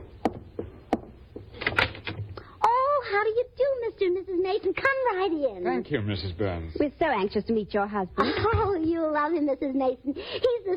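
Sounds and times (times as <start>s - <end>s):
front door rattling and scraping as it swings open: 1.5s - 2.4s
speech: 3.1s - 10.7s.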